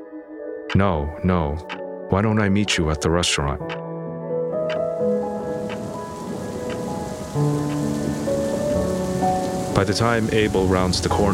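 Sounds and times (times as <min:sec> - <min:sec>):
sustained low musical tones: 0:00.0 - 0:11.3
speech: 0:00.7 - 0:03.9, 0:07.4 - 0:07.6, 0:09.8 - 0:11.3
rain pouring down: 0:05.0 - 0:11.3.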